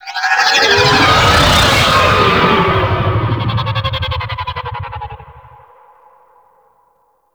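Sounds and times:
vehicle flying by: 0.5s - 5.6s.

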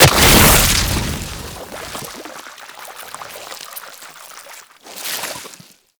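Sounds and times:
enemy death sound: 0.0s - 2.0s.

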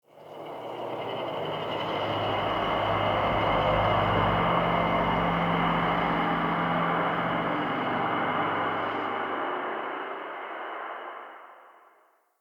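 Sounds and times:
cymbal swell in a crypt: 0.2s - 12.0s.

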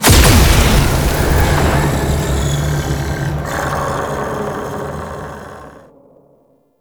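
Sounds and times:
portal shattering open: 0.0s - 3.4s.

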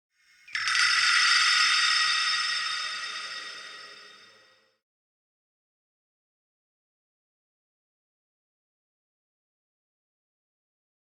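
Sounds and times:
high bell ringing: 0.5s - 4.6s.

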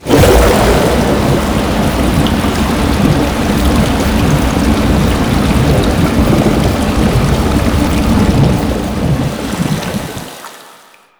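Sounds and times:
water draining in gameplay: 0.0s - 11.1s.

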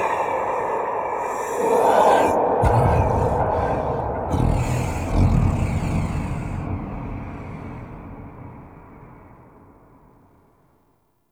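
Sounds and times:
sky breath ambience: 0.2s - 10.1s.

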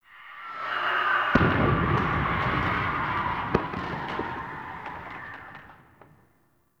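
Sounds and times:
distant explosions: 1.3s - 6.3s.

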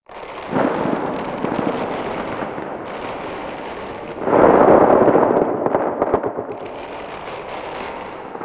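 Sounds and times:
exterior void energy crackling: 0.5s - 7.3s.

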